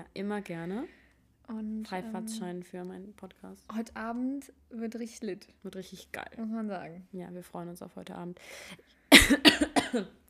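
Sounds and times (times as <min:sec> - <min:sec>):
speech: 0:00.0 - 0:10.2
cough into microphone: 0:09.1 - 0:10.2.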